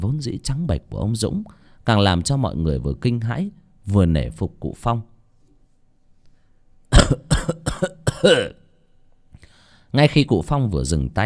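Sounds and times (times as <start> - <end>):
speech: 0.0 - 5.1, 7.8 - 8.6, 9.9 - 11.2
man coughing violently: 6.9 - 8.7.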